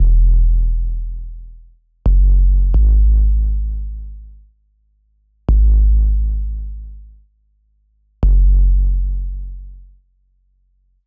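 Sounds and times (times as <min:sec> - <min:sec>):
liquid drum and bass bass line in E: 0:00.0 - 0:04.3, 0:05.5 - 0:07.1, 0:08.2 - 0:09.9.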